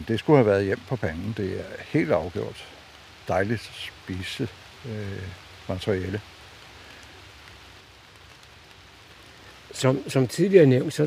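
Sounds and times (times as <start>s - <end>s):
speech: 0.0s - 6.4s, 9.8s - 11.0s
steady rain falling outdoors: 0.0s - 11.0s.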